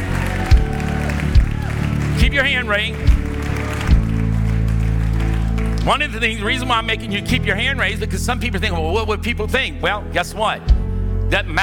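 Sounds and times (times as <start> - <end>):
low thumps: 0.0 - 5.0, 10.7 - 11.2
audience cheering and applauding: 0.0 - 7.1
speech: 2.3 - 3.2, 5.8 - 11.6.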